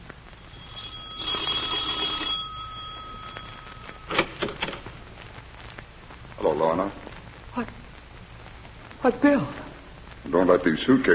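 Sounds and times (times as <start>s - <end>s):
electric doorbell trilling: 0.4s - 4.9s
speech: 6.8s - 7.0s, 7.6s - 7.8s, 9.0s - 9.6s, 10.3s - 11.1s.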